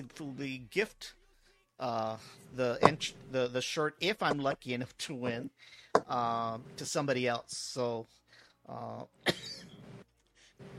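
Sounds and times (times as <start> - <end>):
speech: 0.0 - 1.2, 1.8 - 9.6
person coughing: 9.2 - 9.7.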